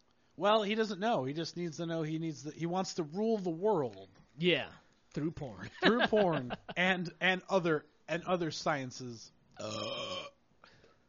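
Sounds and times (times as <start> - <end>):
speech: 0.4 - 10.4
laughter: 5.7 - 6.8
loud throaty burp: 9.6 - 10.4.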